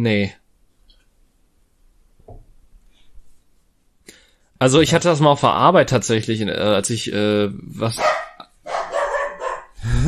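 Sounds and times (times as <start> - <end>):
speech: 0.0 - 0.4, 4.6 - 8.2
dog barking with a whiny tone: 8.0 - 9.8.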